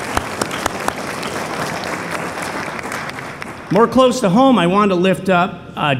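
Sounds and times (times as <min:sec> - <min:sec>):
sharp louder claps: 0:00.0 - 0:04.3
audience applause: 0:00.0 - 0:04.6
speech: 0:03.7 - 0:05.9.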